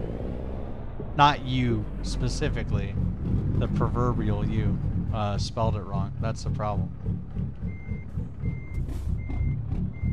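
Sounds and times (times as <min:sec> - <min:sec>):
truck engine low continuous rumble: 0:00.0 - 0:10.1
speech: 0:01.2 - 0:07.6
truck reversing alarm backing out of a small gas station: 0:07.6 - 0:10.1.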